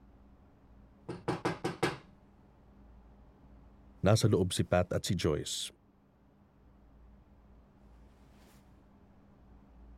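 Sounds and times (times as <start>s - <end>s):
knuckles knocking on an office door: 1.1s - 2.1s
speech: 4.0s - 5.8s.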